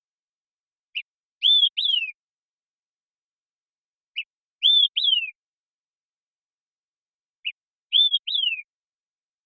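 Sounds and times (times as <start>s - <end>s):
Olive-sided flycatcher Contopus cooperi whistling song: 0.9s - 2.2s, 4.1s - 5.5s, 7.4s - 8.8s.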